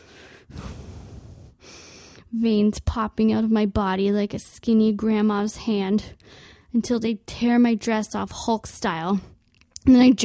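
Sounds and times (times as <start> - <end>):
loud heavy breathing with long rough breaths: 0.0 - 2.3
speech: 2.3 - 10.2.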